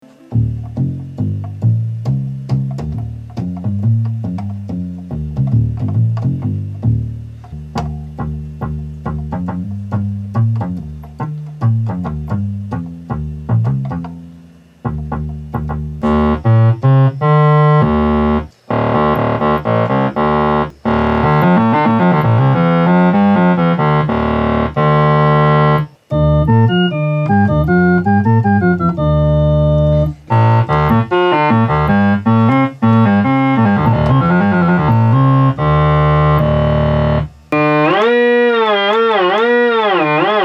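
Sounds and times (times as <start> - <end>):
bass synthesizer: 0.3 - 40.4.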